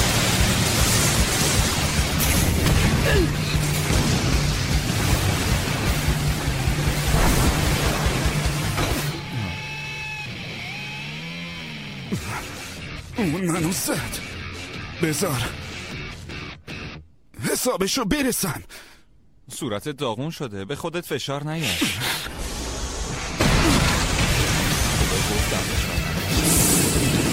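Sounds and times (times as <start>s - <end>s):
rapid chain of explosions: 0.0s - 9.6s, 22.3s - 27.3s
speech: 13.2s - 14.2s, 15.0s - 15.7s, 17.6s - 18.9s, 19.5s - 22.3s.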